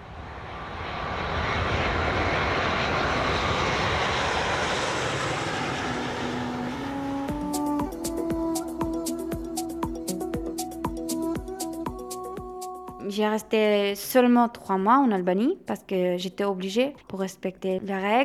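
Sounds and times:
airplane engine roar: 0.0 - 13.1
speech: 13.2 - 18.2.

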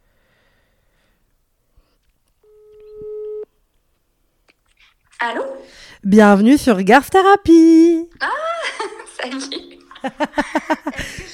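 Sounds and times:
faint noise: 0.0 - 11.3
telephone ringback tone while calling a number: 2.4 - 3.5
speech: 5.2 - 11.3
laughter: 8.2 - 11.3.

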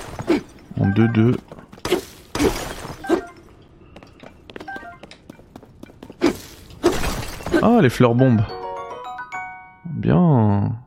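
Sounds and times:
softer clinks and debris rattles: 0.0 - 7.8
speech: 0.8 - 2.6, 7.6 - 8.6, 10.0 - 10.8
objects being smashed in an action-adventure video game: 1.8 - 3.4, 6.3 - 7.8.

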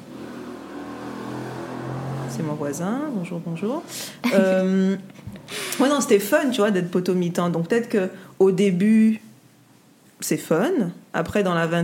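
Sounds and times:
motorcycle engine revving: 0.0 - 2.9
speech: 2.4 - 9.3, 10.2 - 11.8.

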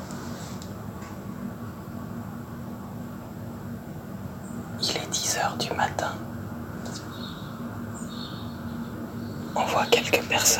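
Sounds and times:
steady low hum: 0.0 - 10.5
birds chirping outdoors: 4.4 - 10.5
speech: 5.4 - 6.3, 9.9 - 10.5.

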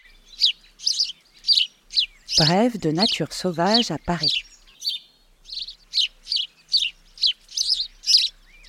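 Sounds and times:
house sparrow chirping: 0.0 - 8.6
speech: 2.4 - 4.5.

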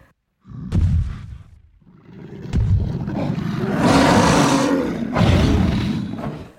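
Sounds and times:
cave bear roaring: 1.8 - 6.5.

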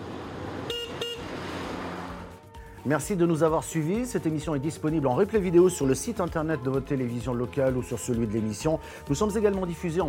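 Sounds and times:
circuit and road cars rumbling past on a roadside in the Sarthe, France: 0.0 - 2.6
car horn toots: 0.6 - 1.3
speech: 2.8 - 10.0.

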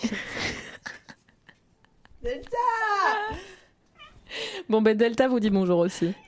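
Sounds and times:
laughter: 0.0 - 2.1
speech: 2.2 - 3.5, 4.7 - 6.2
cat meowing: 3.9 - 4.2, 6.0 - 6.2.

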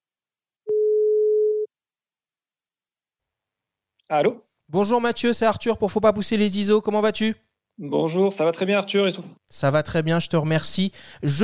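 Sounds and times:
telephone ringing tone electronic beep while calling: 0.7 - 1.7
speech: 4.1 - 11.4.

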